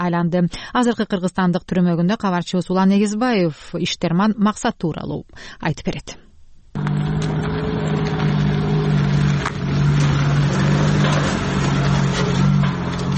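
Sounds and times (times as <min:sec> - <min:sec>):
speech: 0:00.0 - 0:06.2
small cargo truck engine droning through a village in Kyrgyzstan: 0:06.8 - 0:13.1.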